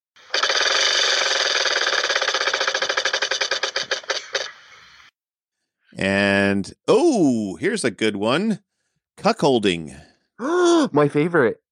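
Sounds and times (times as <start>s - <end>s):
prize wheel spinning in a game ticking: 0.3s - 4.4s
speech: 6.0s - 11.6s.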